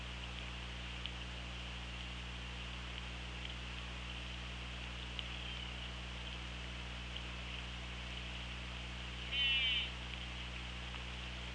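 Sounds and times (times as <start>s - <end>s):
constant low hum: 0.0s - 11.5s
orca call: 9.3s - 10.0s.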